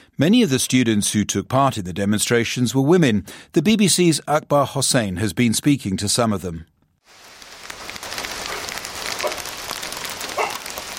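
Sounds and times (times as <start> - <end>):
speech: 0.2 - 7.2
heavy rain pouring in a dense hiss: 7.0 - 10.9.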